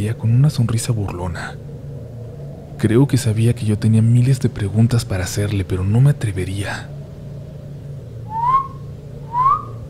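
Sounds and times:
speech: 0.0s - 1.7s, 2.8s - 7.0s
low steady hum: 0.0s - 9.8s
person whistling among trees near a cabin: 8.3s - 9.8s.

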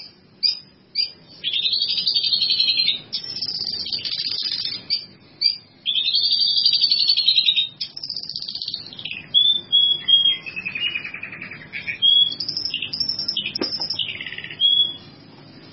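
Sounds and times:
bird song of clear high whistled notes and slurred phrases: 0.0s - 15.2s.

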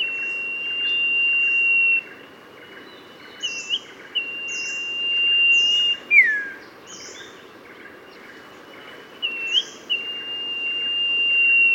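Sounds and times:
Oriental magpie-robin singing: 0.0s - 2.0s, 3.4s - 6.6s, 9.2s - 11.7s
steady background noise: 0.0s - 11.7s.

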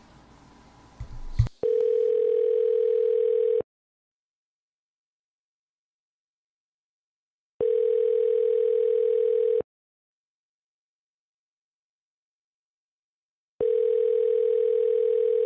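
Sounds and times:
ringback tone on a phone call to a laundromat: 1.6s - 3.6s, 7.6s - 9.6s, 13.6s - 15.4s.

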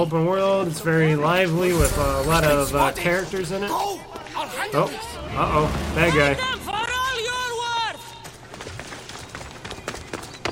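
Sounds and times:
speech: 0.0s - 6.6s
dense busy video game soundtrack: 1.8s - 8.1s
galloping horse hoofbeats in a video game: 8.2s - 10.5s.

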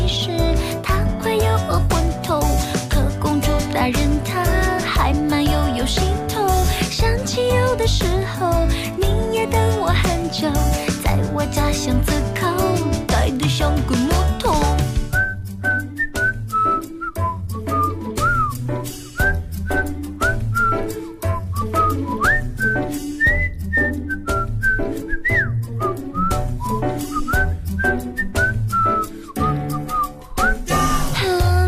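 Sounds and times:
pop song instrumental backing: 0.0s - 31.6s
whistling melody: 14.6s - 31.3s.

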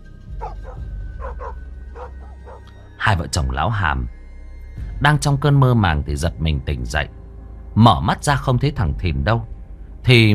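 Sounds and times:
dogs barking across a village, among them a black dog in a yard: 0.4s - 2.9s
speech: 3.0s - 4.2s, 5.0s - 7.2s, 7.8s - 10.3s.

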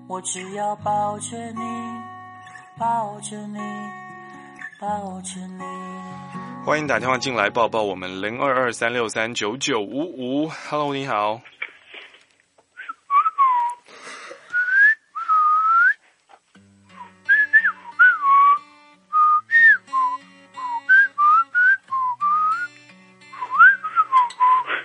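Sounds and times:
speech: 0.1s - 2.1s, 2.8s - 4.0s, 4.8s - 11.5s
caller whistling a tune over the phone: 12.8s - 13.8s, 14.5s - 16.0s, 16.9s - 22.8s, 23.4s - 24.8s.

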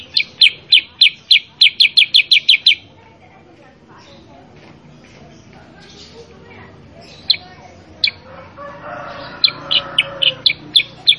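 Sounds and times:
sooty-headed bulbul song with loud downward-sliding chirps: 0.0s - 3.0s, 5.8s - 11.1s.

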